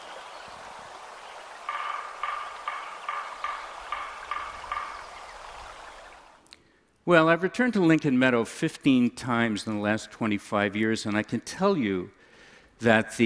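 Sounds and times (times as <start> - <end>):
steady hiss of outdoor ambience: 0.0 - 13.2
woodpecker drumming: 1.0 - 6.5
speech: 7.1 - 12.2, 12.8 - 13.2.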